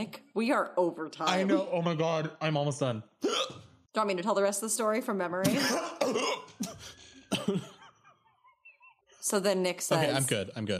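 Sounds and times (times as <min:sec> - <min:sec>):
speech: 0:00.0 - 0:07.8, 0:09.3 - 0:10.7
person hiccuping: 0:03.2 - 0:03.7, 0:05.5 - 0:06.7.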